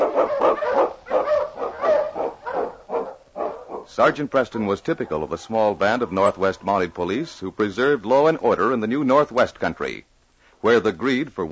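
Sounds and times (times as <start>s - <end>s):
sled huskies barking and yelping: 0.0s - 7.4s
speech: 4.0s - 11.5s.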